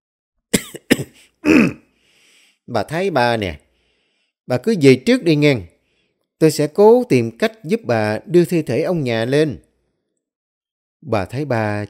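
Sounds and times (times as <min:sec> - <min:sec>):
old man clearing his throat: 0:00.5 - 0:01.9
speech: 0:02.7 - 0:03.6, 0:04.5 - 0:05.7, 0:06.4 - 0:09.6, 0:11.0 - 0:11.8.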